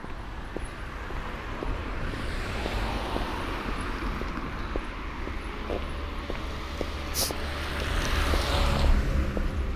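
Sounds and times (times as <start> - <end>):
steady roar of busy road traffic: 0.0 - 9.7
vehicle passing: 2.1 - 9.7.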